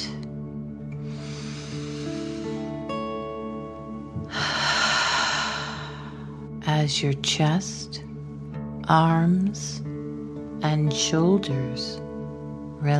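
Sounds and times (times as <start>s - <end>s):
soft sustained musical tones: 0.0s - 12.9s
deep slow breathing in and out as a calming breathing exercise: 1.0s - 2.8s, 4.2s - 6.6s
speech: 6.8s - 8.0s, 8.9s - 9.9s, 10.6s - 12.0s.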